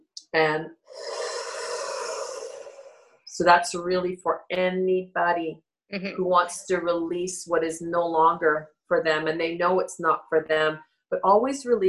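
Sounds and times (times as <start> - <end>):
speech: 0.3 - 1.1, 3.4 - 11.8
slow deep breath in during a guided relaxation: 0.9 - 3.2.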